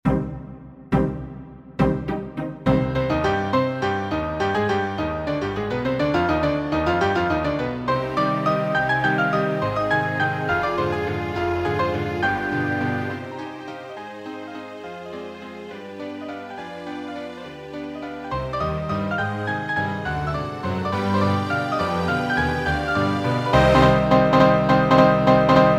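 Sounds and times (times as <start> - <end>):
musical accompaniment: 0.0 - 25.7.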